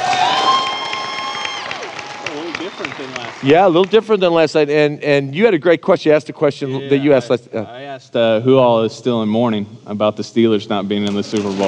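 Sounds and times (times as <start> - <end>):
high-pitched whoops and squeals: 0.0 - 2.0
large audience cheering and shouting for a football team: 0.0 - 3.3
speech: 3.0 - 11.6.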